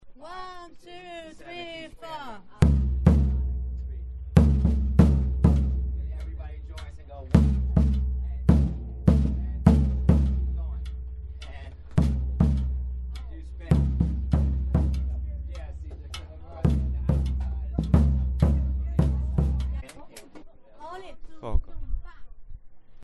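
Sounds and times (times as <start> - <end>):
alternate surdo drum playing maracatu for Carnaval: 2.6 - 19.9.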